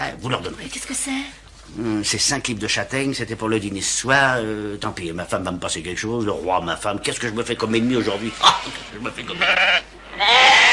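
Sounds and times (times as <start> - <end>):
speech: 0.1 - 10.6
flock of sheep bleating: 9.3 - 10.7.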